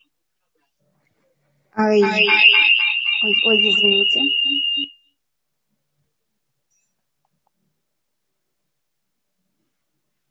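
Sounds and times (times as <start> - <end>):
speech: 1.7 - 5.0
electronic telephone beep while a call is connecting: 2.1 - 5.0.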